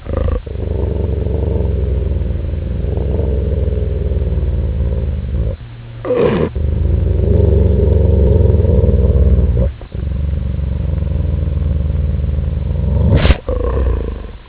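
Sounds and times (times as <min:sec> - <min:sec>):
dog growling: 0:00.0 - 0:14.4.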